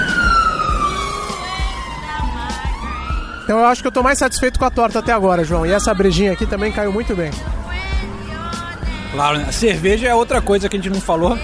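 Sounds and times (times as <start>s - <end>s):
fire truck siren wailing as the vehicle passes: 0.0s - 9.5s
low rumbling thumps of traffic: 0.0s - 11.4s
speech: 3.5s - 7.6s, 9.2s - 11.4s.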